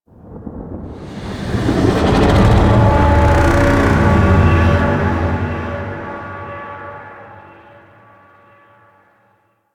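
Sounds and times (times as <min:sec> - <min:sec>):
void dragon vocal distant idle: 0:01.0 - 0:06.1.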